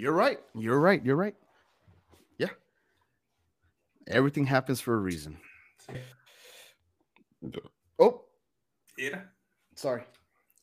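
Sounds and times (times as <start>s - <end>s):
speech: 0.0s - 1.4s, 2.4s - 2.6s, 4.1s - 6.2s, 7.4s - 8.2s, 9.0s - 10.2s
low rumbling burp: 7.4s - 7.8s.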